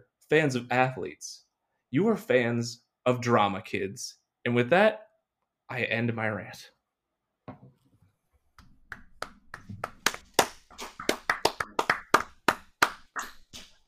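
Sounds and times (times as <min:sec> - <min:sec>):
speech: 0:00.3 - 0:05.1, 0:05.7 - 0:06.8
person clapping: 0:08.9 - 0:13.8.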